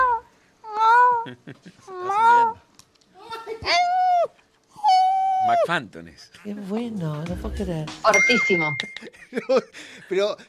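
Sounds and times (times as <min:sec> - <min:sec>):
person imitating a cat meowing: 0:00.0 - 0:01.3, 0:01.9 - 0:02.6, 0:03.6 - 0:05.7
speech: 0:01.2 - 0:02.7, 0:05.4 - 0:10.4.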